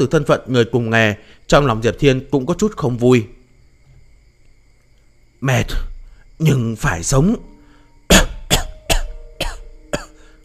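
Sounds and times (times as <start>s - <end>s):
speech: 0.0s - 3.4s, 5.4s - 7.5s
man coughing violently: 8.1s - 10.3s.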